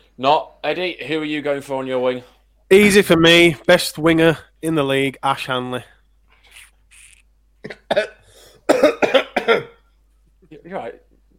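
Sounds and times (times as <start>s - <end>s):
speech: 0.2s - 6.0s, 7.6s - 9.7s, 10.5s - 11.0s
person coughing harshly from something stuck in the throat: 7.6s - 9.9s.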